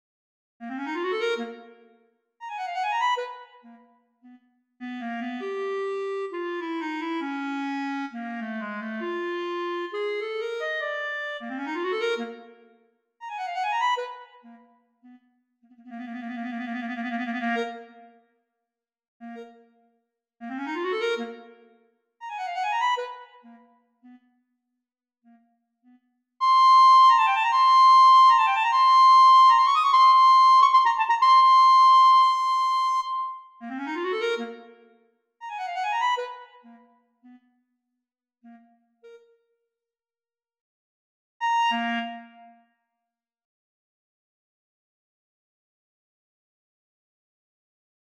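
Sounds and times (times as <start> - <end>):
E-flat clarinet: 0.6 - 1.8, 2.4 - 12.6, 13.2 - 18.1, 19.2 - 19.7, 20.4 - 24.3, 25.3 - 37.5, 38.4 - 39.4, 41.4 - 42.6.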